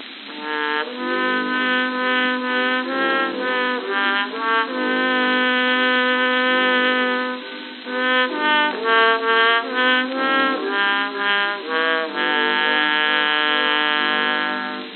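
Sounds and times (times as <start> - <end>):
trombone playing a slow flowing melody on an old recording: 0.0 - 14.9.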